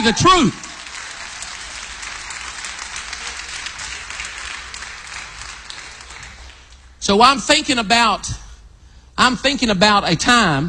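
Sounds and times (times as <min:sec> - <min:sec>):
speech: 0:00.0 - 0:00.7, 0:07.1 - 0:08.4, 0:09.2 - 0:10.6
large audience clapping in praise of the Lord: 0:00.0 - 0:07.0.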